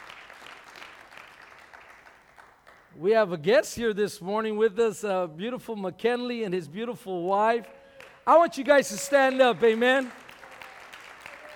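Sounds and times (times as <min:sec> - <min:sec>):
church congregation clapping at a Sunday morning service: 0:00.0 - 0:03.0, 0:07.3 - 0:11.5
speech: 0:03.0 - 0:10.2.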